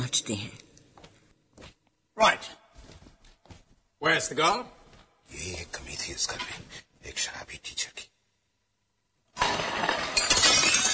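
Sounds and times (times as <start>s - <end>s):
speech: 0.1s - 0.6s, 2.2s - 2.6s, 4.0s - 8.0s
glass plate thrown in anger shattering: 9.4s - 10.9s.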